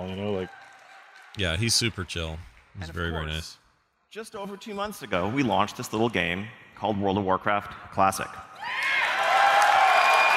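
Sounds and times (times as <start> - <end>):
speech: 0.0 - 0.6, 1.4 - 8.9
large crowd of game fans clapping: 0.0 - 3.4, 8.7 - 10.3.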